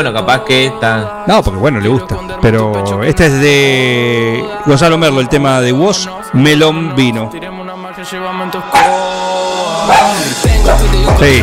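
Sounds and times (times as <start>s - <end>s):
speech: 0.0s - 9.0s, 11.1s - 11.4s
steady tonal music: 0.0s - 11.4s
dog barking: 8.7s - 9.2s, 9.8s - 10.9s.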